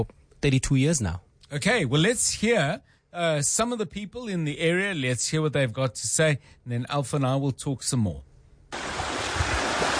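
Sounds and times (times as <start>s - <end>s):
speech: 0.0s - 8.9s
raging waters of a river surging downstream: 8.8s - 9.9s.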